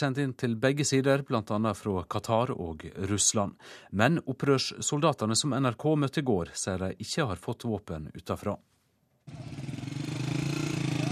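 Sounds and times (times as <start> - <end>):
speech: 0.0 - 9.7
mopeds driving by: 9.3 - 11.1.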